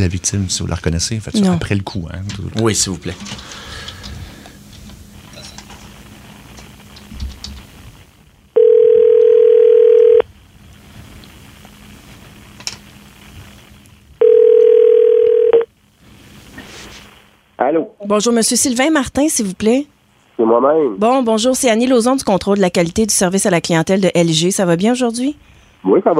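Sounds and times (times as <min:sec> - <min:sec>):
speech: 0:00.0 - 0:03.6, 0:18.1 - 0:26.1
faint noise: 0:00.0 - 0:26.1
telephone tones while a call is placed: 0:08.6 - 0:10.2, 0:14.2 - 0:15.6.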